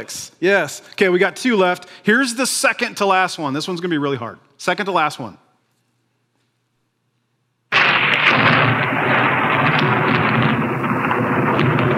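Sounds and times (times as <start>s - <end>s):
speech: 0.0s - 5.4s
stock thunder sound effect of thunderclap and rolling rumble: 7.7s - 11.9s.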